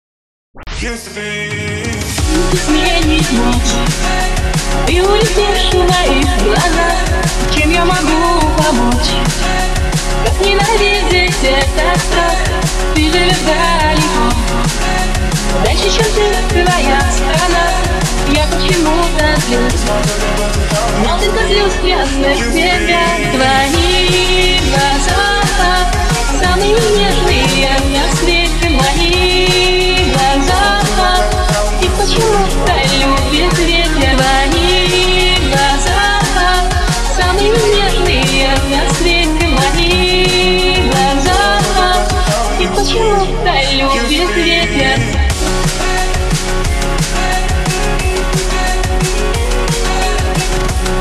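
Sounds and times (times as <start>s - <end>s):
drum and bass music mix: 0.6s - 51.0s.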